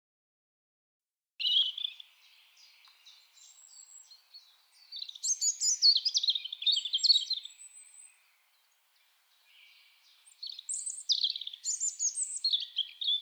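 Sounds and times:
European robin singing, Erithacus rubecula: 1.4 - 13.2.

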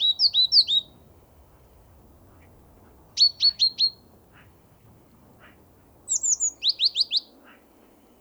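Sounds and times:
great tit Parus major calls: 0.0 - 1.0, 1.6 - 4.7, 5.4 - 7.7.

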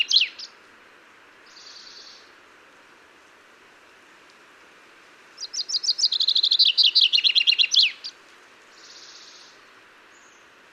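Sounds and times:
common chaffinch Fringilla coelebs song ending: 0.0 - 0.6, 1.4 - 2.3, 5.4 - 10.6.

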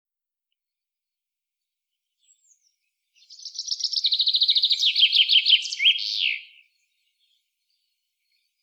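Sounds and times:
common chaffinch singing: 2.2 - 7.4.

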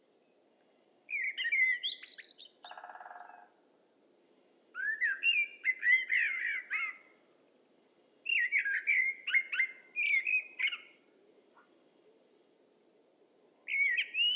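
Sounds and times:
common blackbird Turdus merula fluty warbling song: 1.1 - 3.5, 4.5 - 7.2, 8.2 - 12.5, 13.6 - 14.3.

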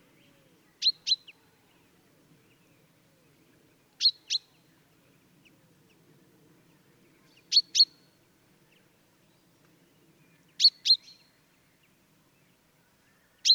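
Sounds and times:
Common chaffinch Fringilla coelebs calling: 0.8 - 1.4, 7.4 - 8.0.

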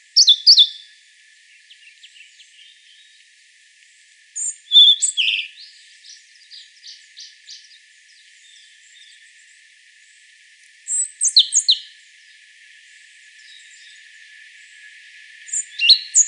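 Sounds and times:
European robin Erithacus rubecula song: 0.0 - 0.9, 1.5 - 3.2, 4.4 - 9.2, 10.9 - 12.0, 15.5 - 16.2.

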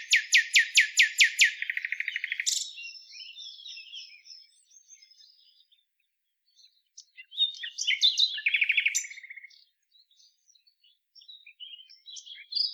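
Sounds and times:
Common nightingale Luscinia megarhynchos singing: 0.0 - 5.8, 6.5 - 12.7.

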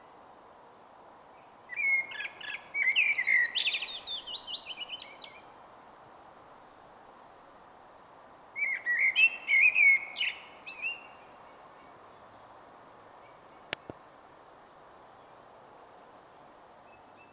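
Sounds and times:
common blackbird Turdus merula song phrase: 1.4 - 5.5, 8.6 - 12.5.

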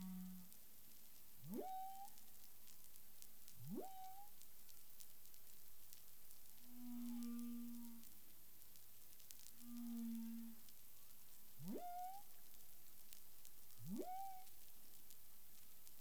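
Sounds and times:
steady background hiss: 0.0 - 15.9
Humpback whale calls with whoop-like upsweeps and humming low moans: 6.8 - 8.1, 9.6 - 10.7, 11.7 - 12.3, 13.9 - 14.5.

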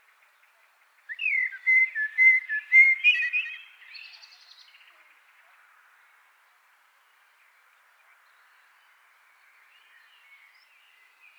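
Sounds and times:
common blackbird Turdus merula singing fluted whistles: 1.1 - 3.7.

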